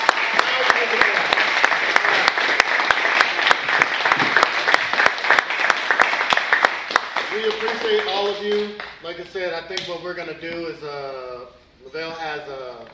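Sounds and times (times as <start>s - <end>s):
audience applause: 0.0s - 9.0s
speech: 9.6s - 12.9s.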